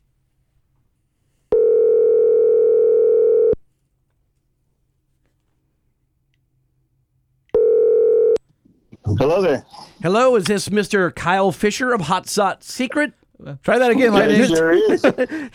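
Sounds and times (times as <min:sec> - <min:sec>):
buzzy telephone tone while a call is placed: 0:01.5 - 0:03.6, 0:07.6 - 0:08.4
speech: 0:09.2 - 0:15.5
laughter: 0:13.8 - 0:15.5.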